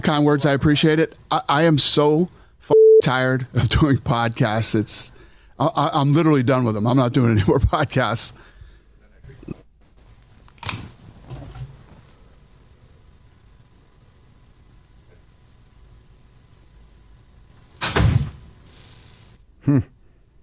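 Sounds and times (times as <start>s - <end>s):
speech: 0.0s - 8.5s
door slamming shut with a heavy thud: 17.8s - 18.4s
sharp bump: 17.8s - 18.4s.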